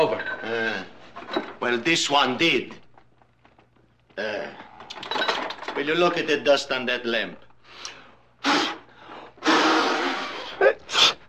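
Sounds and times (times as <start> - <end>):
speech: 0.0 - 2.8, 4.2 - 5.1, 5.8 - 7.4
human sneeze: 8.4 - 11.2.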